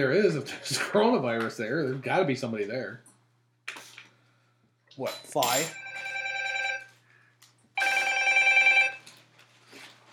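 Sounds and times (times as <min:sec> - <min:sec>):
speech: 0:00.0 - 0:03.1, 0:05.0 - 0:05.8
telephone ringing with electronic trilling bell: 0:05.7 - 0:07.0, 0:07.8 - 0:09.1.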